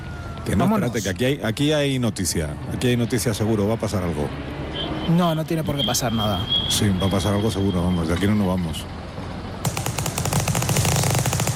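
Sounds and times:
speech: 0.5s - 9.0s
automatic gunfire from gangsters shooting: 9.6s - 11.5s.

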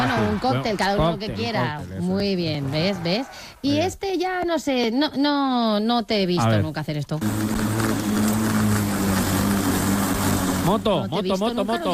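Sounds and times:
speech: 0.0s - 7.8s, 10.7s - 11.9s
lawn mower engine droning: 7.2s - 11.9s.

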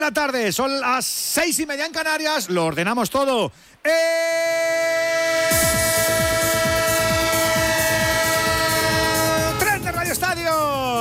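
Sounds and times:
speech: 0.0s - 6.2s
train sound effect horn-like chord of layered tones: 5.4s - 10.4s
rapid rhythmic train rumbling: 5.5s - 10.9s.

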